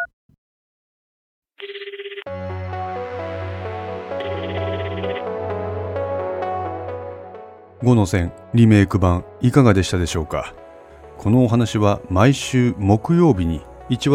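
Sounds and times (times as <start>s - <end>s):
electronic phone call ringing tone: 1.6s - 2.3s, 4.2s - 5.3s
loud full instrumental music: 2.3s - 9.5s
speech: 7.8s - 10.6s, 11.2s - 14.1s.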